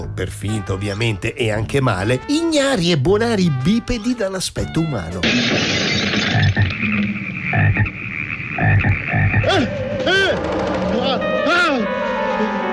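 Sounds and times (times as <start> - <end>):
speech: 0.2 - 5.7, 7.7 - 8.0, 8.8 - 12.6
dense chorus of frogs croaking: 6.2 - 9.7.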